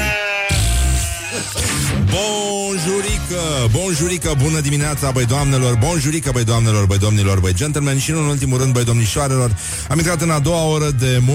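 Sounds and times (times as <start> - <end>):
sheep bleating: 0.0 - 1.6
speech: 2.2 - 11.3.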